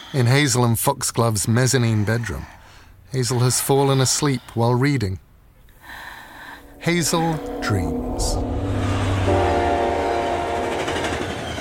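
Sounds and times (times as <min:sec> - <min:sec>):
speech: 0:00.1 - 0:05.3, 0:06.8 - 0:08.6
train rumbling along the rails: 0:06.2 - 0:11.5.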